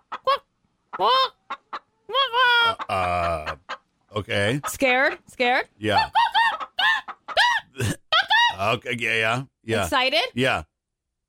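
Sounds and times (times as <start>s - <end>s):
person imitating the call of a hungry chicken: 0.0s - 3.8s, 5.9s - 8.7s
speech: 1.0s - 1.4s, 4.2s - 6.2s, 8.6s - 10.7s.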